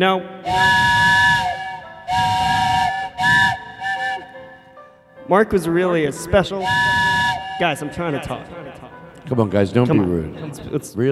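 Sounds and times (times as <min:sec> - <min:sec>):
speech: 0:00.0 - 0:00.9, 0:05.3 - 0:11.1
steam train whistle blasts: 0:00.4 - 0:04.8, 0:06.6 - 0:08.0.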